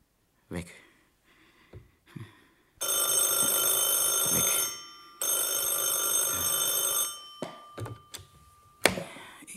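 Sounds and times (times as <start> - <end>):
speech: 0.5 - 0.8
telephone bell ringing: 2.8 - 9.4.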